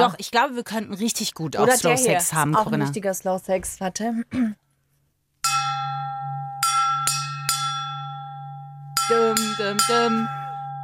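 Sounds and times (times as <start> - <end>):
speech: 0.0 - 4.6, 9.1 - 10.4
singing bowl being struck: 5.4 - 10.8.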